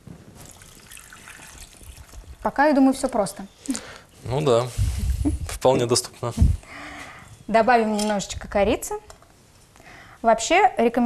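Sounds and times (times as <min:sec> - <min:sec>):
water pouring into a pot of apples to make kissel: 0:00.4 - 0:02.6
speech: 0:02.4 - 0:03.6, 0:04.3 - 0:06.6, 0:07.5 - 0:09.1, 0:10.2 - 0:11.0.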